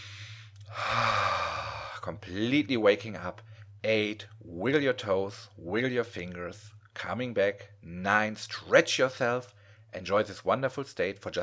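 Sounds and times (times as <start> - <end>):
deep inhale and exhale: 0.0 - 2.0
speech: 2.0 - 11.4.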